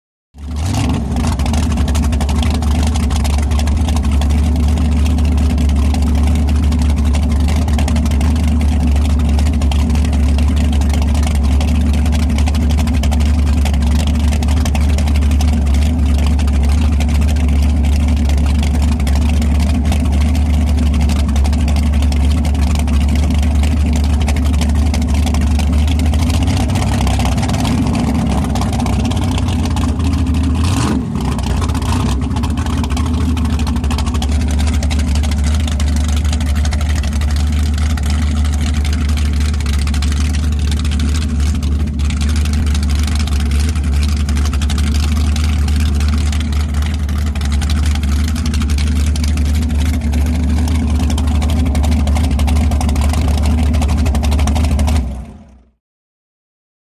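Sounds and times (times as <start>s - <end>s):
offshore power boat idling: 0.4s - 55.6s.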